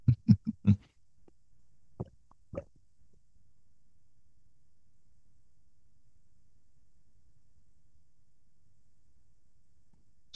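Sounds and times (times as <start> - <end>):
mouth sounds: 0.0 - 0.9
person gulping water: 2.0 - 2.8.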